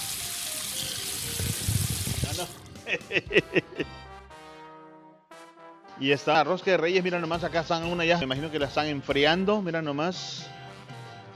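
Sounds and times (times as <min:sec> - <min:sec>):
water running from a sink faucet: 0:00.0 - 0:02.6
speech: 0:02.4 - 0:04.0, 0:06.0 - 0:10.6
laughter: 0:02.7 - 0:03.9.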